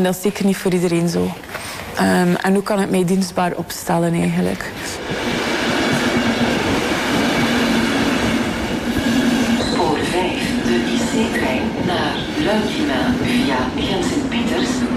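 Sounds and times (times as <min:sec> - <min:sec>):
voice speaking over a public address system: 0:00.0 - 0:05.3, 0:09.6 - 0:14.9
speech: 0:00.0 - 0:05.4, 0:11.2 - 0:14.9
intercity train arriving at station platform: 0:02.9 - 0:14.9
metallic squeals: 0:08.9 - 0:10.3.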